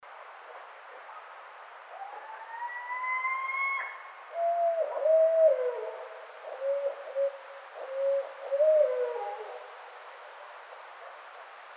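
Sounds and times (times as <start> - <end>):
faint background hiss: 0.0 - 11.7
barred owl calls: 2.0 - 9.6.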